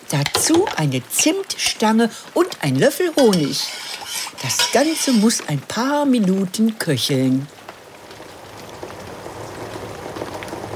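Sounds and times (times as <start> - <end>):
rain: 0.0 - 3.2, 5.3 - 10.7
speech: 0.1 - 7.6.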